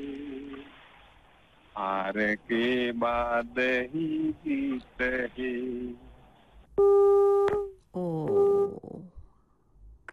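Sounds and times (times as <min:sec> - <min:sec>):
speech: 0:01.8 - 0:06.1
phone disconnection tone after a call is cut off: 0:06.8 - 0:08.8.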